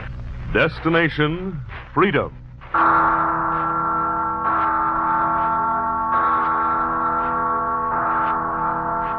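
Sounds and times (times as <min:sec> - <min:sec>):
speech: 0:00.5 - 0:03.5
large bell tolling: 0:02.8 - 0:09.1.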